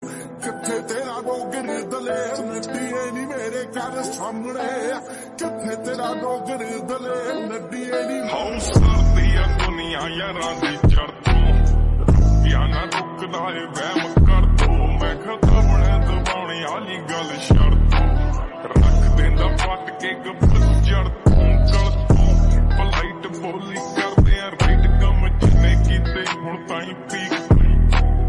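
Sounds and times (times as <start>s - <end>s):
slowed reverb Punjabi song: 0.0s - 28.2s.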